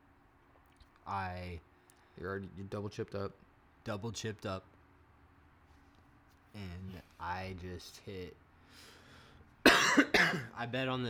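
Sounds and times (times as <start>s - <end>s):
speech: 1.1s - 4.7s, 6.6s - 8.9s, 10.0s - 11.0s
harsh coughs: 9.6s - 10.6s.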